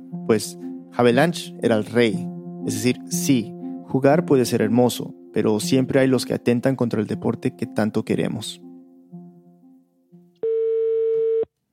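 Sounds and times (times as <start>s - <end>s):
speech: 0.3s - 8.6s
ringback tone of an outgoing telephone call: 10.4s - 11.5s.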